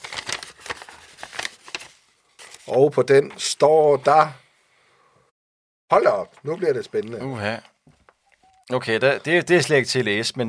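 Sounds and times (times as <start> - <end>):
sheet of paper rustling as slid out of an envelope: 0.0 - 3.4
speech: 2.7 - 4.4, 5.9 - 7.7, 8.7 - 10.4.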